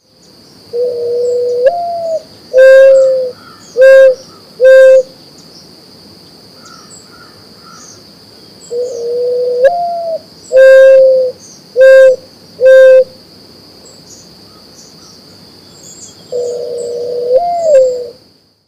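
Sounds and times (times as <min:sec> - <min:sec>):
mourning dove: 0:00.7 - 0:05.2, 0:08.6 - 0:13.2, 0:15.7 - 0:18.2.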